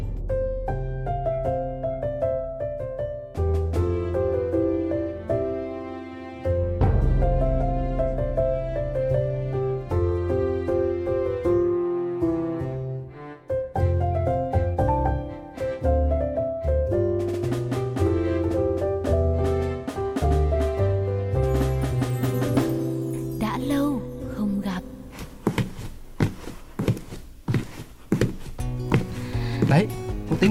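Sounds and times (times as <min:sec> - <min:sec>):
continuous music with a melodic voice-like line: 0:00.8 - 0:25.2
wooden clogs clacking on a hard floor: 0:25.2 - 0:30.4.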